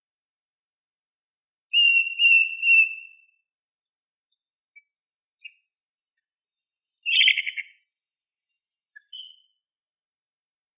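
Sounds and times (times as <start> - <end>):
Hokkaido long-tailed tit calling: 1.7 - 3.4, 7.0 - 7.9, 8.9 - 9.6.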